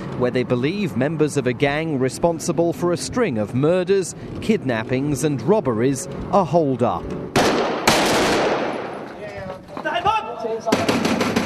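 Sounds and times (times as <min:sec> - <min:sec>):
speech: 0:00.2 - 0:07.3
gunfire exchanged during police raid: 0:07.3 - 0:09.2, 0:10.7 - 0:11.4.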